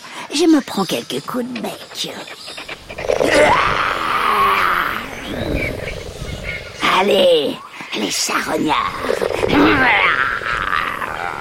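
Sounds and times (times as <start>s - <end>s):
speech: 0.3s - 3.8s, 7.0s - 10.2s
big cat roaring and growling: 2.8s - 7.3s, 8.4s - 11.3s.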